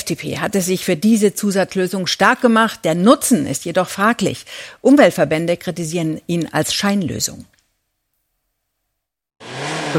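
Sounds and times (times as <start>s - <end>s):
speech: 0.1s - 7.5s, 9.4s - 9.9s
car engine revving: 9.4s - 9.9s.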